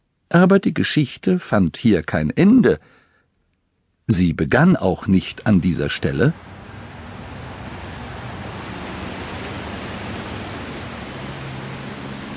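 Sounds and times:
speech: 0.3 - 3.0, 4.1 - 6.6
heavy rain falling in large splashing drops: 5.4 - 12.3.

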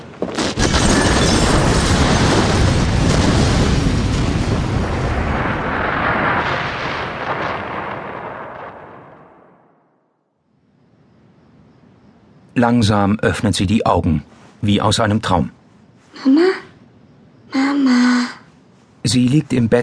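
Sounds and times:
massive explosion with roaring rumble: 0.4 - 9.9
speech: 12.6 - 15.6, 16.2 - 16.6, 19.0 - 19.8.

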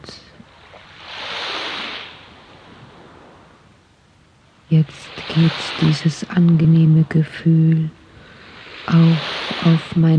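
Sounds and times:
quiet steady surf murmur: 0.0 - 3.8, 4.4 - 10.1
ocean wave washing over a sandy shore: 0.4 - 3.6, 4.6 - 10.1
speech: 4.7 - 8.0, 8.9 - 10.1.

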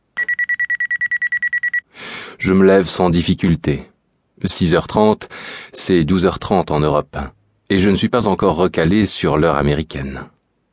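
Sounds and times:
alarm clock ringing in high electronic beeps: 0.2 - 1.9
speech: 2.4 - 10.4.

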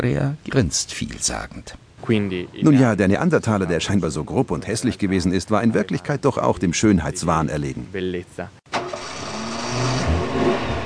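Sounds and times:
speech: 0.0 - 8.6
car engine revving as the car pulls away: 8.8 - 10.8.

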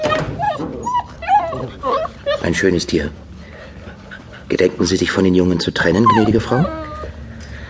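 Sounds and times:
dog whimpering and whining: 0.0 - 2.8, 5.8 - 7.3
speech: 2.5 - 3.2, 4.5 - 6.9.

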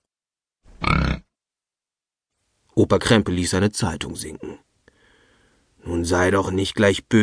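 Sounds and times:
pig grunting with a rattling throaty texture: 0.8 - 1.3
speech: 2.8 - 4.7, 5.8 - 7.2.

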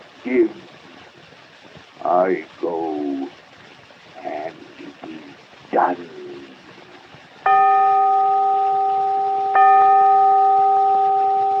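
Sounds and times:
speech: 0.2 - 0.7, 2.0 - 3.1, 5.8 - 6.2
bell ringing: 7.5 - 11.5.

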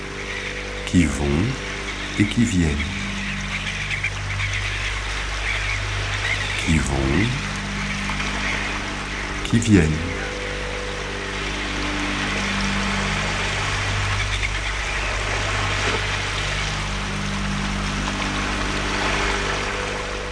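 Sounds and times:
constant low boat engine drone: 0.0 - 20.3
water rushing along a moving boat's hull: 0.0 - 20.3
speech: 0.9 - 3.0, 6.7 - 7.5, 9.5 - 10.1.

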